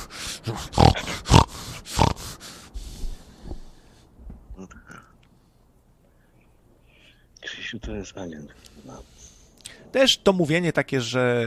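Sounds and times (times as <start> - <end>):
person imitating a pig with harsh nasal snorting grunts: 0.0 - 2.5
speech: 0.5 - 1.1, 7.7 - 9.2, 9.9 - 11.4.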